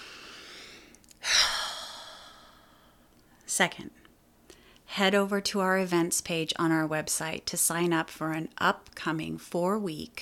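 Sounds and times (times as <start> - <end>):
deep breath: 0.0 - 3.1
speech: 3.6 - 4.0, 5.0 - 10.2.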